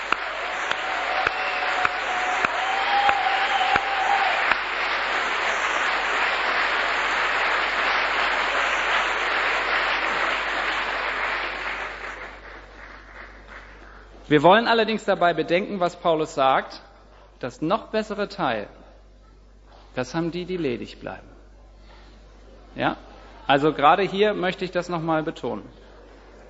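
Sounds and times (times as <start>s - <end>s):
audience applause: 0.0s - 14.2s
faint whoops: 0.2s - 4.6s
speech: 14.3s - 18.8s, 20.0s - 21.4s, 22.8s - 25.8s.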